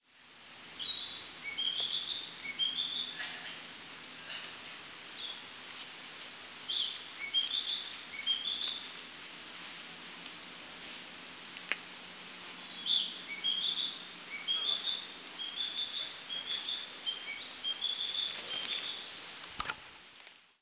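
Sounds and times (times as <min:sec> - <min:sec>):
narcissus flycatcher bird song: 0:00.8 - 0:03.4, 0:05.2 - 0:05.6, 0:06.3 - 0:09.0, 0:12.4 - 0:19.2.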